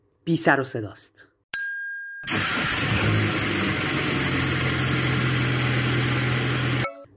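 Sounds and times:
speech: 0:00.2 - 0:01.3
small Pride car engine cranking in Iran: 0:02.3 - 0:06.8.

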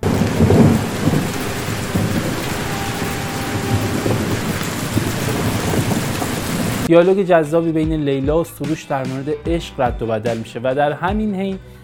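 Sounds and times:
deep roll of thunder rumbling: 0:00.0 - 0:06.9
steady rain pouring down over a villa: 0:00.0 - 0:06.9
speech: 0:06.9 - 0:11.8.

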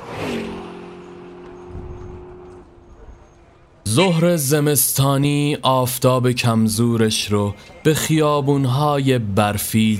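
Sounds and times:
car engine shifting gear and speeding off down an alley: 0:00.0 - 0:03.7
speech: 0:04.0 - 0:09.9.

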